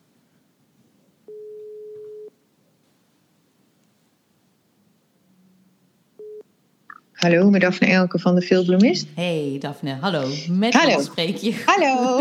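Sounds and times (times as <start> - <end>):
ringback tone of an outgoing telephone call: 1.3 - 2.3, 6.2 - 6.4
speech: 7.2 - 12.1.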